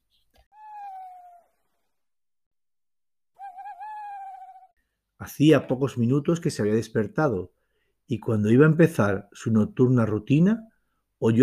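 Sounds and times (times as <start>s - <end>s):
owl hooting: 0.5s - 1.5s, 3.4s - 4.7s
speech: 5.2s - 11.4s.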